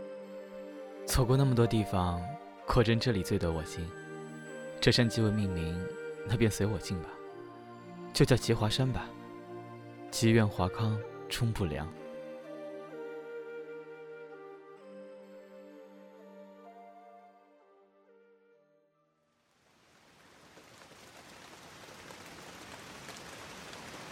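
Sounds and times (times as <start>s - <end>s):
tonal music: 0.0s - 18.2s
speech: 1.1s - 4.0s, 4.8s - 7.2s, 8.1s - 9.2s, 10.1s - 12.0s
steady rain in the April plum-rain season: 19.4s - 24.1s.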